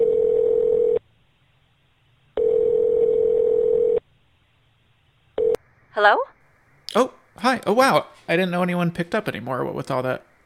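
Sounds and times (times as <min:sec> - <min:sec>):
telephone line tone buzzing hum: 0:00.0 - 0:01.0, 0:02.4 - 0:04.0, 0:05.4 - 0:05.6
speech: 0:06.0 - 0:06.3, 0:06.9 - 0:10.3.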